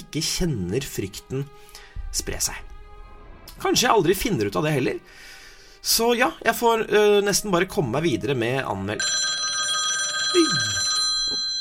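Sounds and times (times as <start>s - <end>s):
speech: 0.1s - 2.7s, 3.6s - 9.4s, 10.3s - 10.8s
telephone ringing with a steady electronic tone: 9.0s - 11.6s.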